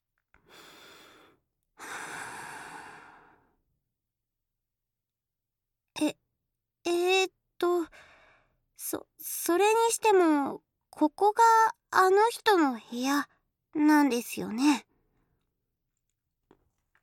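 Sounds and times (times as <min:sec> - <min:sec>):
deep breathing from someone trying to calm down: 0:00.5 - 0:03.6
speech: 0:06.0 - 0:06.2, 0:08.9 - 0:14.9.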